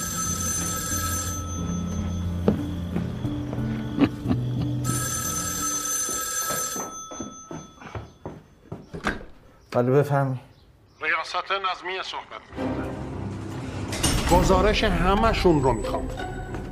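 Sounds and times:
old-fashioned telephone bell ringing: 0:00.0 - 0:08.7
speech: 0:09.8 - 0:10.5, 0:11.2 - 0:12.8, 0:14.3 - 0:16.4.

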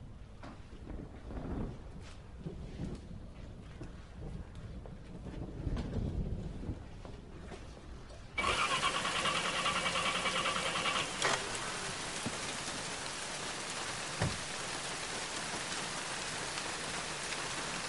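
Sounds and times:
wind: 0:00.0 - 0:17.8
car engine cranking and sputtering, struggling to start: 0:08.4 - 0:11.7.

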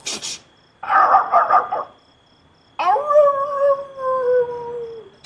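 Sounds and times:
dog howling with brief sharper yelps: 0:00.8 - 0:01.9, 0:02.8 - 0:05.1.

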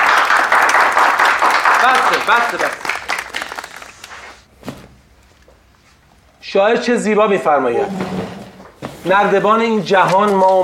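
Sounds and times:
audience applause at a company gathering: 0:00.0 - 0:04.3
speech: 0:01.8 - 0:02.8, 0:06.5 - 0:08.4, 0:09.0 - 0:10.6.

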